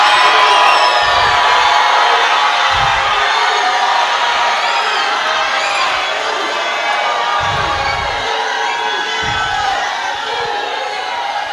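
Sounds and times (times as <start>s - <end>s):
large audience shouting hallelujah together: 0.0s - 11.5s
low thumps: 1.0s - 1.8s, 2.6s - 3.6s, 7.4s - 8.4s, 9.2s - 10.6s.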